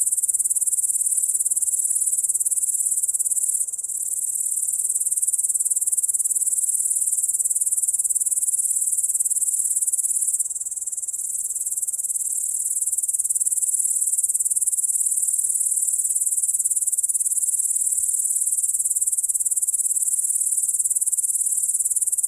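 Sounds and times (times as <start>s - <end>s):
cricket chorus of high-pitched pulsing chirps: 0.0s - 22.2s.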